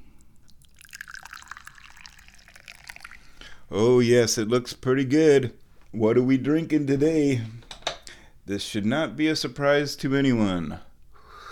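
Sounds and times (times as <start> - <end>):
tea pouring into a cup: 0.4 - 3.5
speech: 3.7 - 7.6, 8.5 - 10.9.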